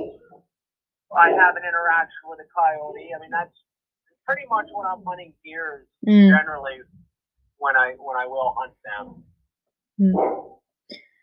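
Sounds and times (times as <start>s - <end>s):
speech: 1.1s - 3.7s, 4.3s - 7.0s, 7.6s - 9.3s, 10.0s - 11.0s
dogs barking in the background: 10.1s - 10.6s.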